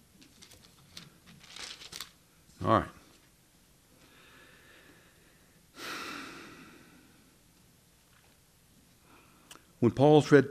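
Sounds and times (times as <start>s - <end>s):
thin pages of a new Bible rustling as they are turned: 0.2s - 2.2s
speech: 2.6s - 3.0s, 9.8s - 10.4s.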